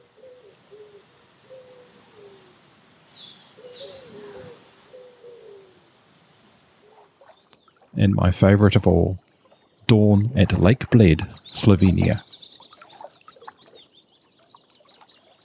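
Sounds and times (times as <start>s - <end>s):
mourning doves cooing in a morning chorus on St. Lucia: 0.0s - 14.0s
steady outdoor hiss: 0.0s - 15.4s
higher bird chirps: 0.2s - 6.1s, 9.4s - 15.4s
speech: 8.0s - 9.2s, 9.9s - 12.3s.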